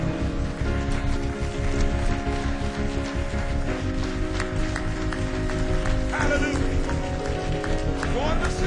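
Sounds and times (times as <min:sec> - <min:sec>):
sustained musical tones: 0:00.0 - 0:08.6
congregation clapping steadily and loudly: 0:01.7 - 0:08.6
voices: 0:06.1 - 0:07.0, 0:08.0 - 0:08.6.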